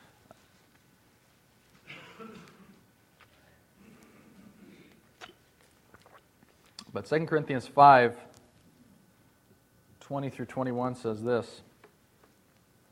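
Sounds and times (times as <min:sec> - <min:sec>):
person sipping water: 0:03.2 - 0:06.9
soft slurping gulps and swallows of water: 0:03.8 - 0:06.9
faint mouth clicks: 0:04.9 - 0:06.9
speech: 0:06.9 - 0:08.3, 0:10.1 - 0:11.7.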